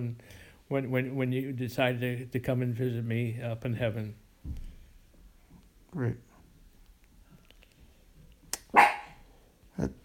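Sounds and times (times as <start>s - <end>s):
speech: 0.0s - 4.6s, 5.9s - 6.3s, 9.8s - 10.0s
dog barking: 8.7s - 9.3s.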